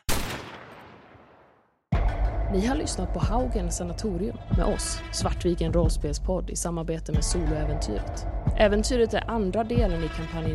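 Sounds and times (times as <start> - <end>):
pistol shots: 0.0 - 1.4
speech: 2.5 - 10.5.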